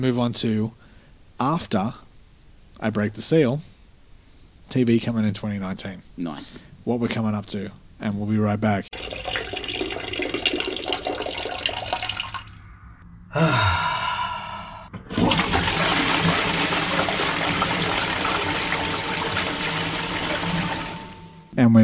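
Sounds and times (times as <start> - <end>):
speech: 0.0 - 0.8, 1.4 - 2.0, 2.8 - 3.7, 4.7 - 9.3, 13.4 - 13.6
stream of urine splashing into toilet water: 8.9 - 12.8, 15.1 - 21.5
breathy sigh: 13.3 - 15.0.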